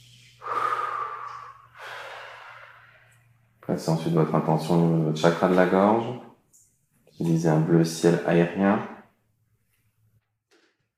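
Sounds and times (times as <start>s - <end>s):
person blowing out breath during a guided breathing exercise: 0.2s - 3.3s
speech: 3.7s - 6.2s, 7.2s - 8.9s.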